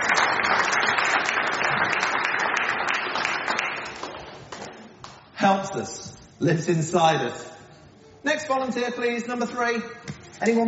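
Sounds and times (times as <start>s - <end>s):
audience applause: 0.0s - 4.6s
speech: 5.4s - 7.5s, 8.2s - 10.6s.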